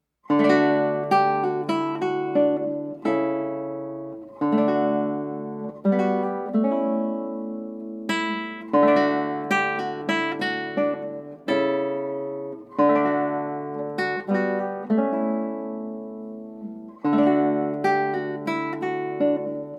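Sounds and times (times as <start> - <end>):
classical music: 0.3 - 19.7.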